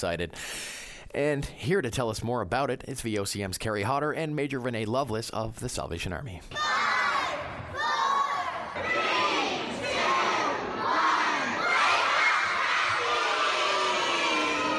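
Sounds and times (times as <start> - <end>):
speech: 0.0 - 6.8
children shouting and cheering as they wake up: 6.5 - 14.7.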